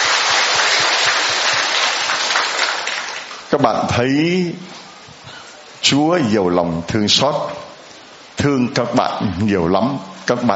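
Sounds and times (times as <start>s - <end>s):
crowd applauding: 0.0s - 3.5s
speech: 3.5s - 4.7s, 5.8s - 7.6s, 8.4s - 10.5s.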